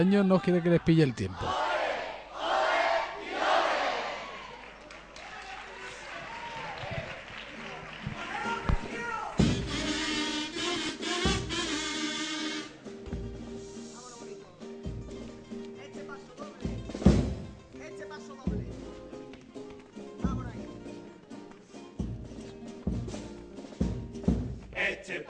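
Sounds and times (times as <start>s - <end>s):
speech: 0.0s - 1.7s
carnival group singing a pasodoble in loud full voices: 1.4s - 4.2s, 24.8s - 25.2s
regular drum hits: 8.6s - 10.2s, 10.8s - 12.0s, 16.6s - 17.7s, 22.0s - 24.8s
strummed accompaniment: 8.7s - 24.7s.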